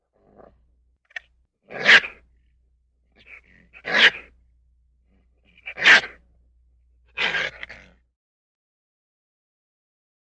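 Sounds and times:
raccoon giving rough snorting bursts: 0:00.2 - 0:00.6, 0:01.7 - 0:02.2, 0:03.2 - 0:04.3, 0:05.1 - 0:06.2, 0:07.2 - 0:08.0.

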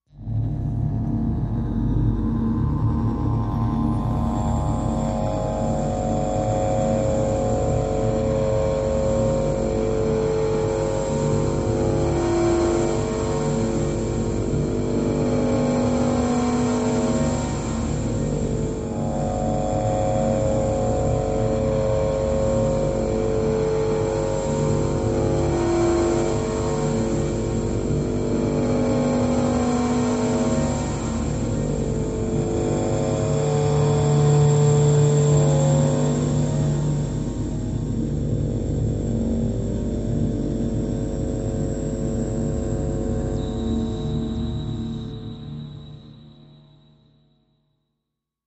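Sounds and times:
power core hum: 0:00.1 - 0:46.2
steady high metallic electro pulse: 0:00.2 - 0:47.0.

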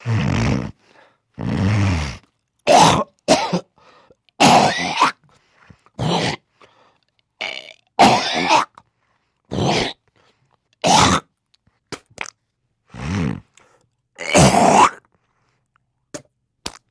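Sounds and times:
person spitting: 0:00.0 - 0:00.8, 0:01.4 - 0:03.7, 0:04.3 - 0:05.3, 0:05.9 - 0:06.6, 0:07.4 - 0:08.9, 0:09.5 - 0:10.1, 0:10.8 - 0:15.2, 0:16.1 - 0:16.8
person snorting: 0:00.0 - 0:05.2, 0:05.9 - 0:06.8, 0:07.4 - 0:08.8, 0:09.5 - 0:10.0, 0:12.8 - 0:15.1
person coughing: 0:02.7 - 0:03.8, 0:04.4 - 0:05.2, 0:08.0 - 0:08.8, 0:10.8 - 0:11.3, 0:14.2 - 0:15.0.

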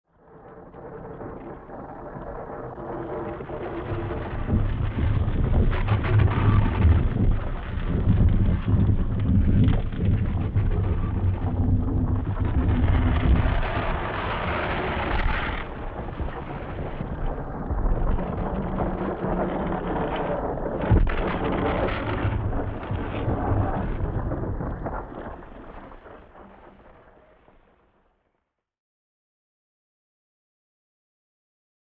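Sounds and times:
ice cracking and rubbing: 0:02.8 - 0:26.2.

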